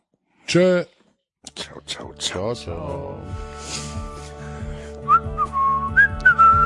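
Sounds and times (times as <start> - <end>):
speech: 0.5 - 0.9, 1.5 - 3.8
person whistling a short teasing tune: 5.0 - 6.6.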